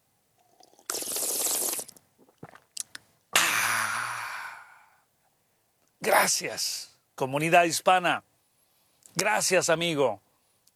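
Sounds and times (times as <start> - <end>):
slurping a hot drink: 0.4 - 2.9
swallowing clicks: 0.4 - 3.1
person exhaling a satisfied ahh: 3.4 - 5.0
speech: 6.1 - 8.3, 9.2 - 10.2.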